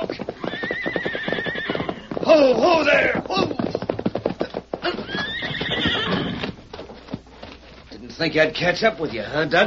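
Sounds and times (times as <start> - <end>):
horse whinnying: 0.0 - 3.8, 4.8 - 6.6
horse hooves clopping: 0.0 - 9.6
speech: 2.3 - 3.5, 8.2 - 9.6.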